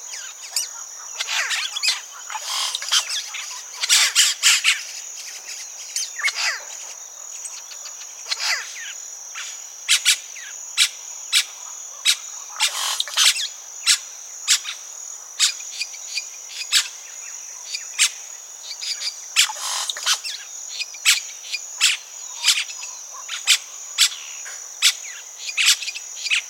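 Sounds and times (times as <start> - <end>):
steady high insect drone: 0.0 - 26.4
oropendolas calling from a nesting colony: 0.1 - 4.7, 6.0 - 6.9, 7.7 - 8.9, 12.5 - 13.3.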